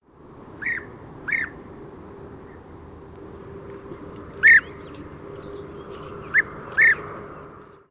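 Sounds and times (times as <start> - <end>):
European bee-eater calling: 0.6 - 1.6, 4.0 - 7.8.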